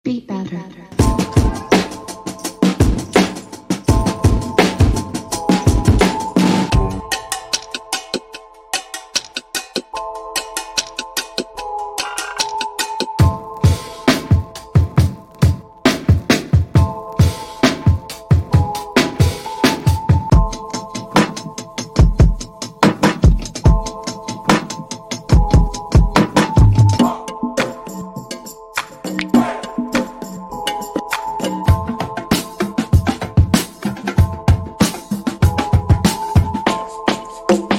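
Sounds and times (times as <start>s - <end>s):
drums playing in the basement: 1.0s - 8.3s, 12.1s - 37.7s.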